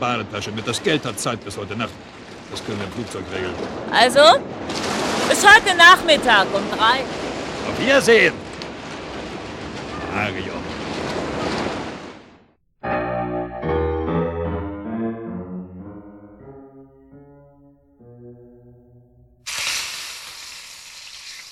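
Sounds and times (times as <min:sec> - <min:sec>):
speech: 0:00.0 - 0:08.4, 0:10.1 - 0:10.7
melodic tonal music: 0:12.8 - 0:19.5
flounder frying in a pan: 0:19.5 - 0:21.5.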